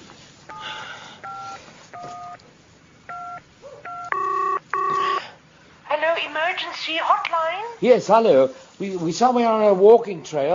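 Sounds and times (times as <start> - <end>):
phone keypad dialing tones: 0.5 - 2.4, 3.1 - 5.2
speech: 6.6 - 10.5.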